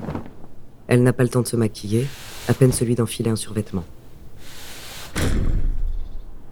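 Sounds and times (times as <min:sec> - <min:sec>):
speech: 0:00.9 - 0:04.0
fists pounding on an apartment door: 0:04.5 - 0:06.0.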